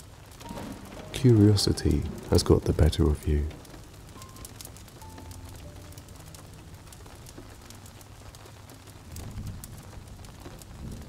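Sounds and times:
rain pattering on leaves, the ground and the roof of a log cabin: 0:00.0 - 0:11.0
speech: 0:01.2 - 0:03.6.

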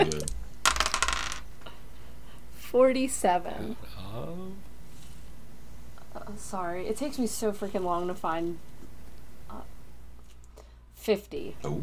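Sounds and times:
dice rolling on a hard table: 0:00.0 - 0:01.5
speech: 0:02.8 - 0:04.7, 0:06.2 - 0:08.8, 0:11.1 - 0:11.8.

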